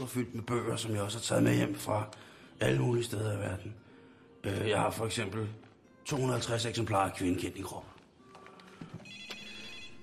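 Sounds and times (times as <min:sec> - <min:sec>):
speech: 0:00.0 - 0:03.8, 0:04.4 - 0:08.0
telephone ringing with a bright electronic tone: 0:09.0 - 0:10.0.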